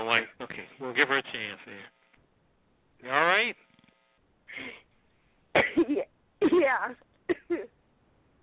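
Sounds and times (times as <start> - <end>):
speech: 0.1 - 2.0, 3.0 - 3.7
woman coughing: 5.5 - 7.7.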